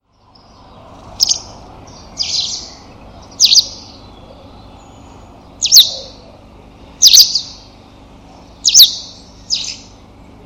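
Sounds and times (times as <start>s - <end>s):
low steady hum: 0.0s - 10.4s
bird giving sharp high chip notes with buzzy tail: 0.4s - 10.0s.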